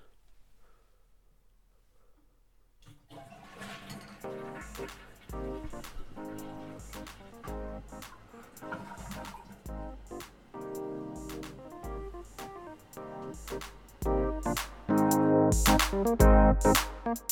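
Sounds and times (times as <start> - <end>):
toilet flushing: 2.9 - 5.3, 8.4 - 9.7
music: 4.2 - 17.2
speech: 15.9 - 17.2.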